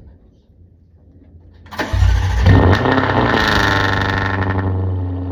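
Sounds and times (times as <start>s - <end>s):
Jaguar cold start with non-valved race exhaust: 1.7s - 5.2s.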